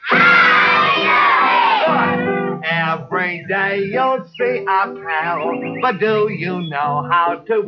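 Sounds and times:
group of children shouting a greeting together: 0.0 - 2.2
sing-along song: 0.0 - 7.6
speech: 3.2 - 7.6.

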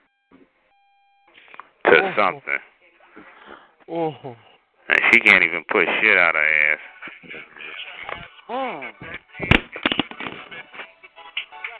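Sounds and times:
speech: 2.0 - 3.3, 3.9 - 7.7
phone hitting a hard floor: 9.4 - 10.5.

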